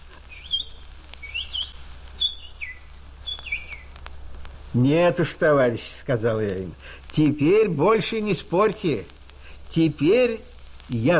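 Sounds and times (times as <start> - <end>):
small birds chirping and singing: 0.0 - 4.5
speech: 4.7 - 9.2, 9.8 - 11.1.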